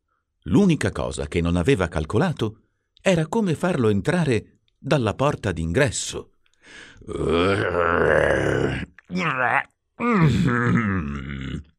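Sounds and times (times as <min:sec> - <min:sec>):
speech: 0:00.4 - 0:11.7
human voice imitating a troll grunting, groaning and panting: 0:07.0 - 0:11.7.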